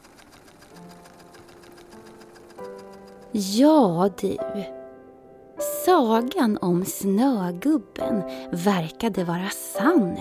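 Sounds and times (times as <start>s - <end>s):
sewing machine running: 0.0s - 3.6s
speech: 3.3s - 4.8s, 5.9s - 10.2s.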